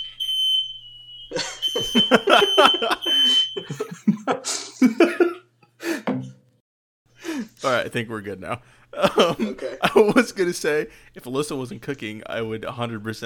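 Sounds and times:
smoke alarm sounding a high-pitched tone: 0.0 - 4.1
people laughing: 1.3 - 5.5, 9.0 - 10.5
speech: 1.4 - 5.2, 7.7 - 13.2.

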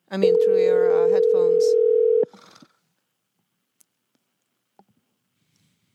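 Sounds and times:
faint noise: 0.0 - 5.9
speech: 0.1 - 1.9
telephone ringing tone from an outgoing call: 0.2 - 2.3.

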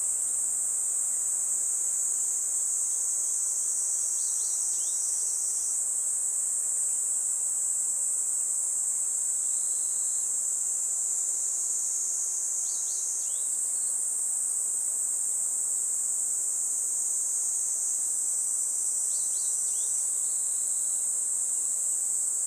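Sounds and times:
chorus of Kaempfer cicadas singing in a forest by a river in summer: 0.0 - 22.4.

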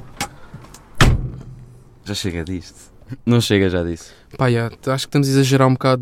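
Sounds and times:
car door shutting with a heavy thump: 1.0 - 1.6
speech: 2.1 - 6.0.

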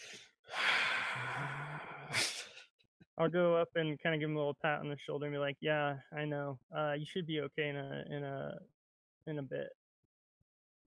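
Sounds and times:
heavy agitated breathing of a person who has been shot: 0.0 - 2.7
speech: 3.2 - 9.8.

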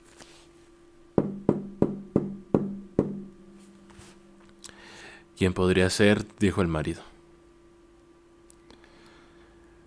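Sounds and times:
firm knocking on a wooden door: 1.2 - 3.3
speech: 5.4 - 7.1.

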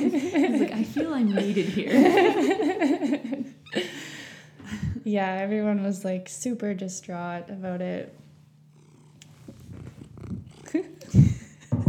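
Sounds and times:
speech: 0.3 - 3.5, 5.1 - 8.2
cat purring: 8.7 - 11.4.

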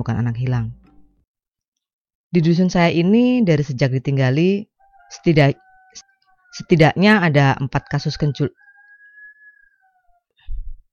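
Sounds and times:
speech: 0.0 - 0.8, 2.3 - 8.6
rooster crowing at midnight: 4.8 - 10.3.

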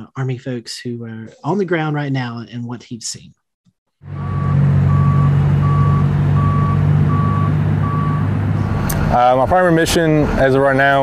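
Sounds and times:
speech: 0.0 - 3.4, 9.1 - 11.0
loud dump truck diesel engine rumble: 4.0 - 11.0
dump truck reversing alarm beeping: 4.1 - 8.3.

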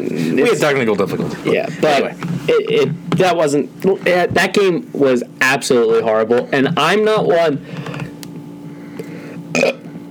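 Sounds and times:
speech: 0.0 - 7.9
long low rumbling burp: 9.5 - 9.8.

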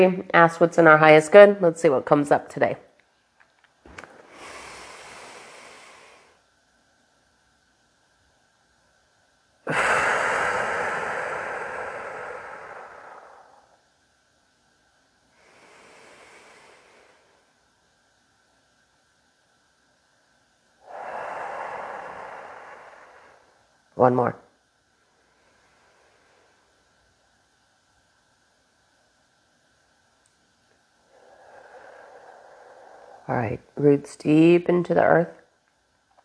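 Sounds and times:
speech: 0.0 - 2.9, 24.0 - 24.4, 33.8 - 35.4
slow deliberate breaths during a breathing exercise: 4.0 - 6.6, 9.7 - 14.0, 15.2 - 18.4, 20.7 - 24.0, 24.7 - 28.6, 30.3 - 33.8.

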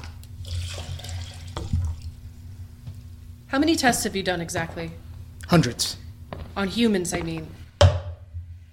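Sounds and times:
water pouring into a glass: 0.4 - 2.2
speech: 3.5 - 6.0, 6.6 - 7.6.

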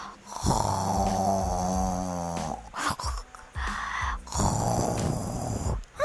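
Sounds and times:
voice performing loud exaggerated snoring: 0.3 - 3.3, 4.2 - 5.9.

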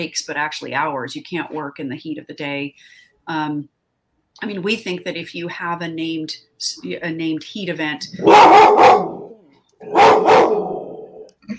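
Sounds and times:
speech: 0.0 - 3.8, 4.4 - 9.0
dog barking: 8.2 - 11.3.

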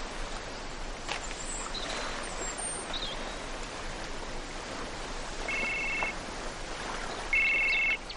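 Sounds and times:
steady broadband noise: 0.0 - 8.1
telephone ringing in short electronic bursts: 5.5 - 6.2, 7.3 - 8.0.

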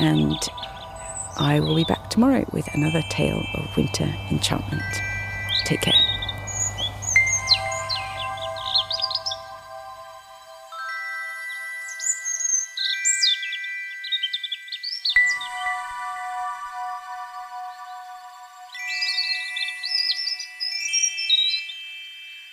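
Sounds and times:
speech: 0.0 - 0.8, 1.4 - 5.1, 5.7 - 6.1
low rumble: 0.0 - 10.3
sustained background music: 0.0 - 22.3
European Robin singing in Berlin in October: 0.0 - 22.4.

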